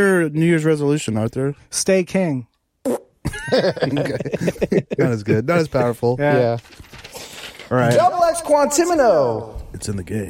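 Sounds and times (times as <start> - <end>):
speech: 0.0 - 7.0, 7.7 - 10.2
raspy sputtering fart sound effect: 2.8 - 3.2
laughter: 3.3 - 6.2.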